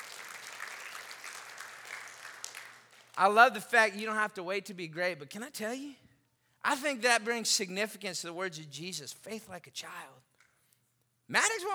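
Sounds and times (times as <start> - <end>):
crowd applauding: 0.0 - 3.2
speech: 3.2 - 6.0, 6.6 - 10.3, 11.3 - 11.7.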